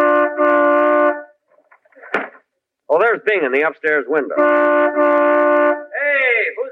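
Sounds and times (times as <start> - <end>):
car horn toots: 0.0 - 1.3, 4.3 - 6.0
speech: 3.1 - 5.4.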